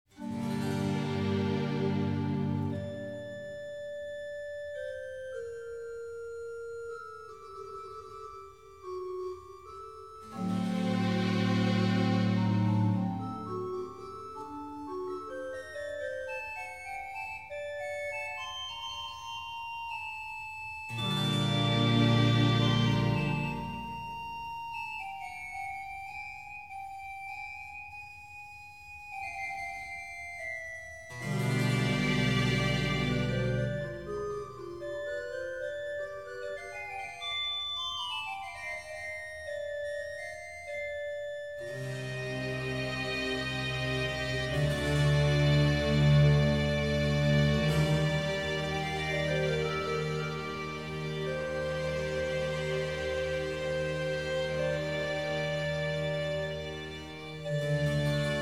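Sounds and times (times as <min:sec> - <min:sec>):
organ concerto: 0:00.1 - 0:58.4.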